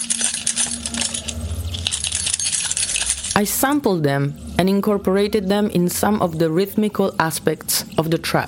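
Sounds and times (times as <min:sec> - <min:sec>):
keys of officers jingling in detention facility corridors: 0:00.0 - 0:03.4
low hum: 0:00.0 - 0:08.4
speech: 0:03.4 - 0:08.4.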